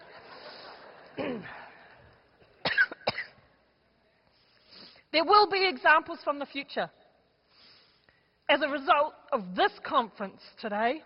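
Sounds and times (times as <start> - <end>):
person coughing roughly and sharply: 1.2 - 1.6, 2.6 - 3.4
speech: 1.2 - 1.6, 5.2 - 7.0, 8.5 - 11.0.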